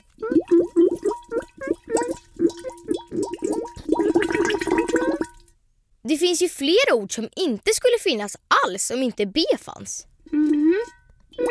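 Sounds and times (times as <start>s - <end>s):
voice imitating bubbling: 0.0s - 5.4s, 10.3s - 11.4s
speech: 6.1s - 10.9s.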